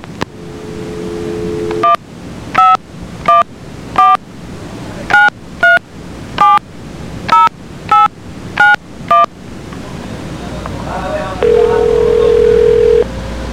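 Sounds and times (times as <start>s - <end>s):
telephone dial tone: 1.0s - 2.0s, 11.4s - 13.0s
landline telephone keypad dialing dual-tone beeps: 2.6s - 4.2s, 5.1s - 5.8s, 6.4s - 6.6s, 7.3s - 9.3s, 11.4s - 13.0s.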